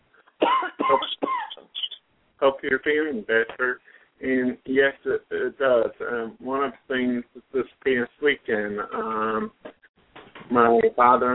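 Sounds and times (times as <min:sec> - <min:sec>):
harsh coughs: 0:00.4 - 0:01.7
speech: 0:00.9 - 0:01.2, 0:02.4 - 0:09.6, 0:10.5 - 0:11.3.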